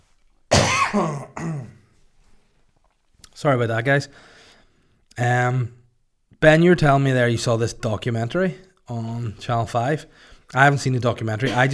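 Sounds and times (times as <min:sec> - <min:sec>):
gravelly throat clearing: 0:00.5 - 0:01.9
person coughing: 0:00.5 - 0:01.9, 0:11.4 - 0:11.7
speech: 0:00.9 - 0:01.8, 0:03.4 - 0:04.3, 0:05.2 - 0:05.8, 0:06.4 - 0:11.7.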